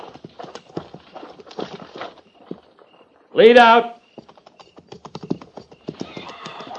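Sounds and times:
several horses' hooves clip-clopping on hard ground: 0.0 - 3.0, 4.0 - 6.7
speech: 3.4 - 4.0.

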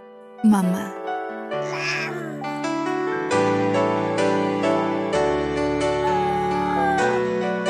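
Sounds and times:
speech: 0.4 - 1.0
baby crying in short wavering wails: 1.6 - 7.6.

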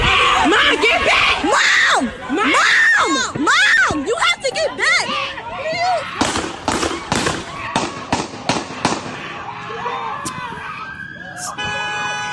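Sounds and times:
people shouting frantically: 0.0 - 11.6
gunshots fired by police at a man: 6.2 - 9.3
siren-like wail: 9.4 - 12.3.

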